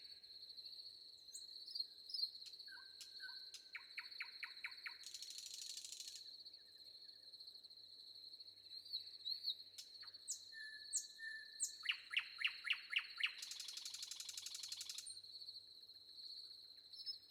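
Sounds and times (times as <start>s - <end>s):
crickets chirping: 0.0s - 17.2s
wind: 0.0s - 17.2s
common nightingale song with thin whistles and buzzy rattle: 2.1s - 6.2s, 8.9s - 15.1s.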